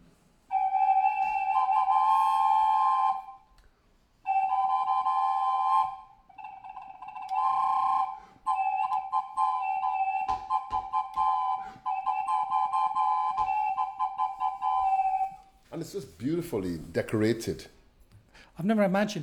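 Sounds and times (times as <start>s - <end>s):
high flute-like whistles from Peruvian terracotta band figures blown through holes: 0.4s - 15.6s
speech: 16.2s - 17.8s, 18.6s - 19.2s.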